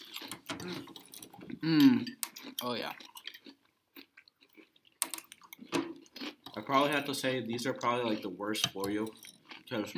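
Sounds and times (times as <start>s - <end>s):
crunchy chewing of dry cinnamon cereal: 0.0s - 1.2s, 2.2s - 7.1s, 9.2s - 9.9s
speech: 0.6s - 1.0s, 1.6s - 3.1s, 6.6s - 9.9s.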